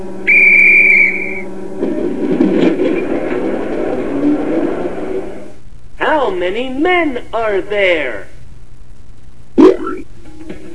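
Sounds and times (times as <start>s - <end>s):
train whistle: 0.2s - 1.6s
train rumbling and clattering as it starts to move: 1.5s - 5.5s
speech: 6.3s - 8.3s.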